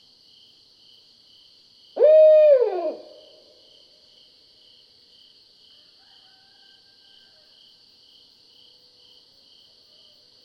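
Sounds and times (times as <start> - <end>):
barred owl hooting: 2.0 - 3.3.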